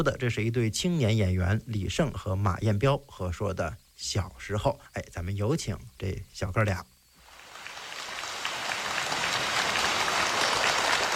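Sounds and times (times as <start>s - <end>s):
speech: 0.0s - 6.9s
audience applause: 7.3s - 11.1s.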